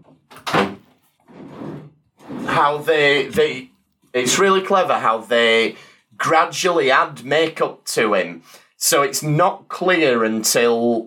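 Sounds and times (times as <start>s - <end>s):
door shutting with a firm thump: 0.0s - 2.7s
speech: 2.6s - 11.0s.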